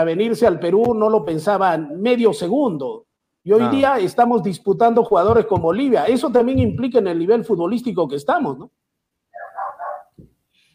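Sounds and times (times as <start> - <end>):
speech: 0.0 - 8.8
small dog barking with sharp yappy barks: 9.4 - 10.1.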